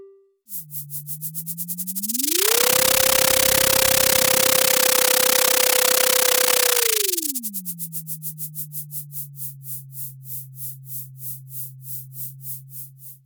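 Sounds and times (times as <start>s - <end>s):
synthetic sonification tone of echo sounder data on zooplankton migration: 0.5s - 7.8s
brief buzzy blips: 0.5s - 7.9s.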